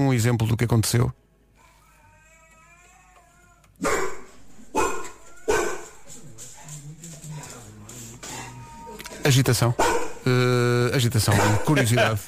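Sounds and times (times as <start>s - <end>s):
speech: 0.0s - 1.2s, 9.3s - 12.2s
recording of a husky: 0.0s - 12.2s
dogs barking excitedly at a husky recording: 3.8s - 7.6s, 9.7s - 10.3s, 11.2s - 12.1s
laughter: 11.3s - 12.2s.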